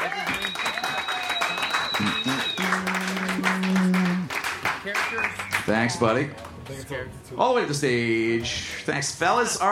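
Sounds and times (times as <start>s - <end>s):
audience applauding for round-two competitors: 0.0s - 5.9s
people cheering: 0.0s - 5.9s
speech: 5.7s - 9.6s.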